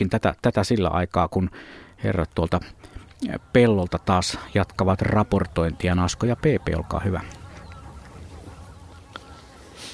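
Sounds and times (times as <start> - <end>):
speech: 0.0 - 7.4
steady low outdoor rumble: 2.1 - 9.9
very large flock of tundra and taiga bean geese honking from a field: 2.3 - 9.9.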